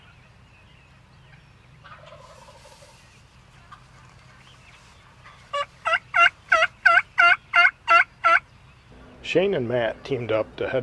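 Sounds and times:
big wild turkey tom gobbling during spring hunting season: 1.3 - 8.4
speech: 9.3 - 10.8.

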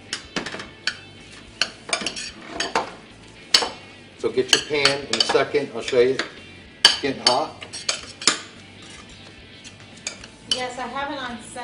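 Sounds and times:
metal spoon stirring Dijon mustard in a dish: 0.0 - 2.9, 4.5 - 10.8
speech: 4.2 - 6.4, 7.0 - 7.6, 10.6 - 11.6.

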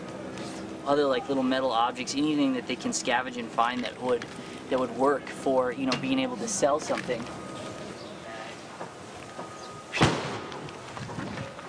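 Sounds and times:
steady hum: 0.0 - 11.6
speech: 0.9 - 7.4
gunshot: 9.9 - 10.6.

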